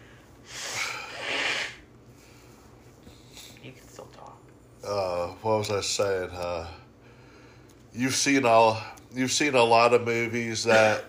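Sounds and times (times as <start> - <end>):
person blowing their nose: 0.4 - 1.9
speech: 4.8 - 6.8, 8.0 - 11.0.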